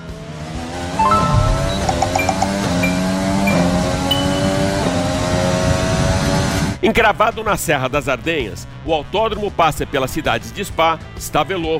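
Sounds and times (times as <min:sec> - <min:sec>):
Formula 1 car engine on a fast lap in a racing video game: 0:00.0 - 0:06.8
speech: 0:06.8 - 0:11.7.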